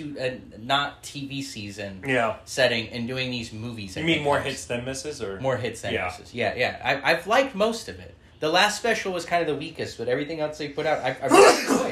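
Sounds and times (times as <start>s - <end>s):
speech: 0.0s - 11.8s
sneeze: 11.2s - 11.8s.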